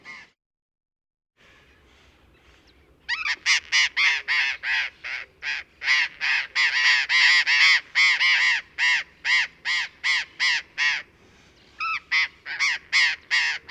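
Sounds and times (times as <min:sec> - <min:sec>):
burrowing parrot Cyanoliseus patagonus giving harsh screeching calls: 0:03.1 - 0:11.0, 0:11.8 - 0:13.6.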